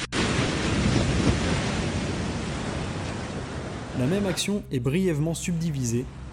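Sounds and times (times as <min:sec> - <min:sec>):
sea waves crashing violently against rocks: 0:00.1 - 0:04.4
speech: 0:04.0 - 0:06.2.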